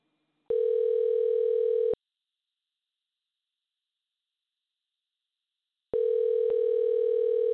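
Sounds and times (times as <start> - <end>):
buzzy electronic telephone ringing tone on the caller's end: 0.5 - 2.0, 6.0 - 7.5.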